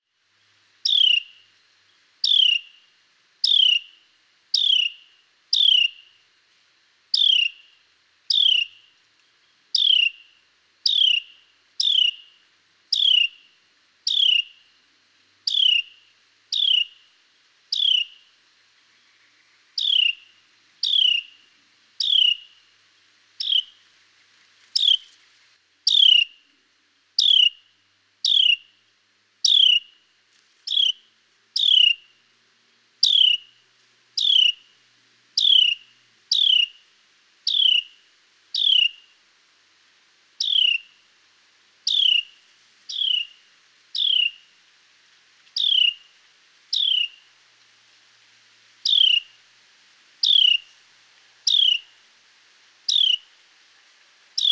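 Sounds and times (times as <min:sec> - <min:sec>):
Carolina wren Thryothorus ludovicianus singing: 0:00.8 - 0:06.3, 0:07.1 - 0:14.7, 0:15.4 - 0:22.8, 0:23.4 - 0:23.9, 0:24.7 - 0:25.2, 0:25.9 - 0:26.4, 0:27.1 - 0:28.8, 0:29.4 - 0:30.0, 0:30.6 - 0:32.2, 0:33.0 - 0:33.6, 0:34.2 - 0:36.8, 0:37.4 - 0:39.1, 0:40.4 - 0:41.0, 0:41.8 - 0:44.5, 0:45.5 - 0:46.1, 0:46.7 - 0:47.3, 0:48.8 - 0:49.4, 0:50.2 - 0:50.7, 0:51.4 - 0:52.0, 0:52.8 - 0:53.3, 0:54.4 - 0:54.5.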